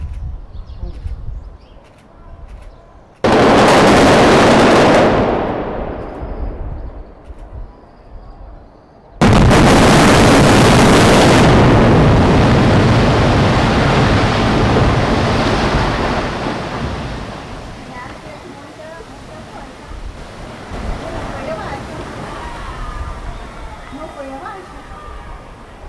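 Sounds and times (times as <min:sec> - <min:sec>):
tower implosion in a city: 0:03.3 - 0:07.2, 0:09.2 - 0:18.0.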